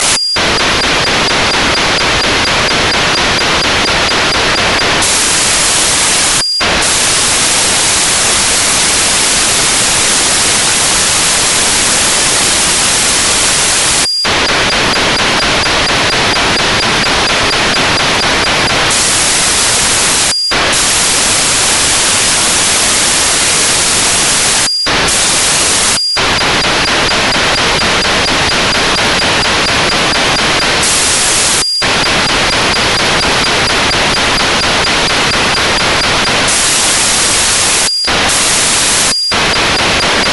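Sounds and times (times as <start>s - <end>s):
satellite radio signal at 437421 kHz: 0.0s - 40.3s.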